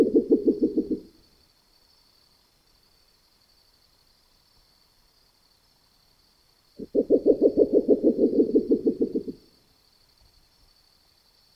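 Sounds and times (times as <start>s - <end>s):
Neotropical spectacled owl giving rapid low knocking hoots: 0.0s - 1.1s, 6.8s - 9.4s.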